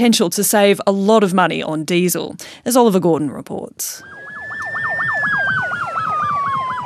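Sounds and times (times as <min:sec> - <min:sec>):
speech: 0:00.0 - 0:04.2
siren of a fully electric Fire Rescue Victoria fire truck in Australia: 0:04.0 - 0:06.8.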